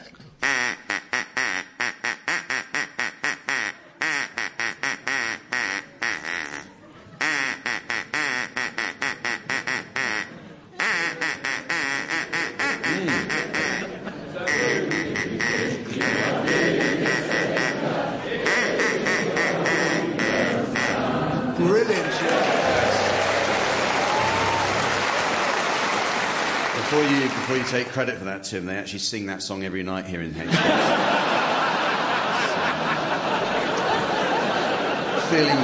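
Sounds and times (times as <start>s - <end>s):
duck quacking: 0.4s - 17.8s, 18.4s - 21.1s
laughter: 6.0s - 7.5s, 9.9s - 27.9s, 30.4s - 35.6s
speech: 27.7s - 31.2s, 35.3s - 35.6s.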